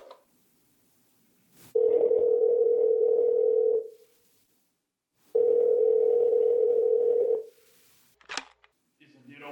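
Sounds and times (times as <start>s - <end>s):
office telephone ringing tone: 1.7s - 3.9s, 5.3s - 7.5s.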